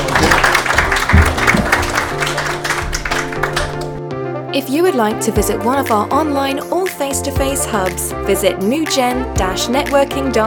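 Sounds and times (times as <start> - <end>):
audience applause: 0.0 - 4.0
speech: 4.7 - 10.4.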